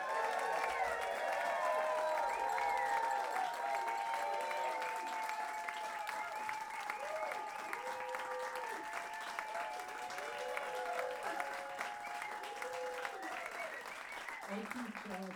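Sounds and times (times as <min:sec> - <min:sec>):
crowd applauding for a big band flute player: 0:00.0 - 0:15.3
scattered cheers and shouts: 0:00.0 - 0:15.3.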